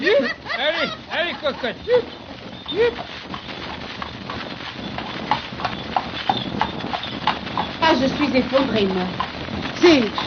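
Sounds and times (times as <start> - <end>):
laughter: 0.0 - 3.0
horse hooves clip-clopping while walking: 0.0 - 10.2
rumbling background: 0.0 - 10.2
speech: 0.8 - 3.1, 8.1 - 10.2.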